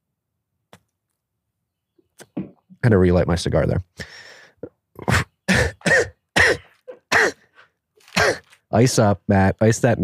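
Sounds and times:
speech: 0:02.3 - 0:04.2, 0:08.8 - 0:10.0
throat-clearing rasps: 0:04.6 - 0:08.6
person coughing: 0:05.0 - 0:07.5, 0:08.1 - 0:08.6.

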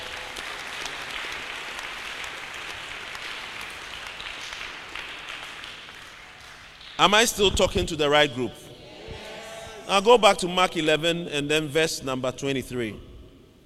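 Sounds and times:
audience applauding: 0:00.0 - 0:07.1
speech: 0:07.0 - 0:08.6, 0:09.9 - 0:13.1.

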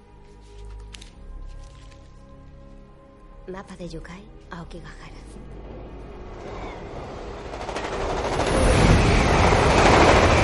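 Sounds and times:
speech: 0:03.5 - 0:05.6
train travelling along a railway track through the countryside in Japan: 0:05.4 - 0:10.4.

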